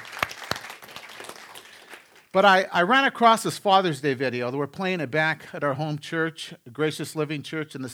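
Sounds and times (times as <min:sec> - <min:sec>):
audience applause: 0:00.0 - 0:02.2
speech: 0:02.3 - 0:07.9.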